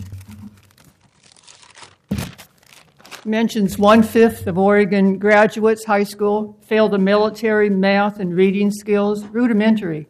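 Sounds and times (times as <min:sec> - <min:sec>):
newspaper pages crackling: 0:00.0 - 0:04.0
newspaper pages rustling and crinkling: 0:00.0 - 0:04.3
speech: 0:03.2 - 0:10.0.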